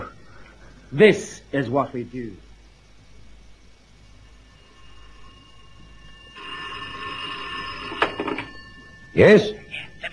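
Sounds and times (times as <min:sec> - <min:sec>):
speech: 0:00.9 - 0:02.5, 0:09.2 - 0:09.6
telephone ringing with an electric bell tone: 0:04.6 - 0:10.1.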